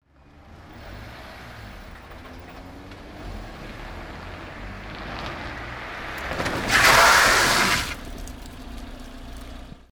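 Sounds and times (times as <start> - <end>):
traffic: 0.0 - 9.9
car brakes: 6.1 - 8.2.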